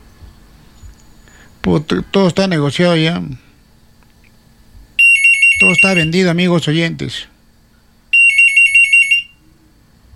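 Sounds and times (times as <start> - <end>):
speech: 1.7 - 3.5, 5.7 - 7.3
telephone ringing with high-pitched electronic warbling trill for incoming call: 5.0 - 6.2, 8.2 - 9.4.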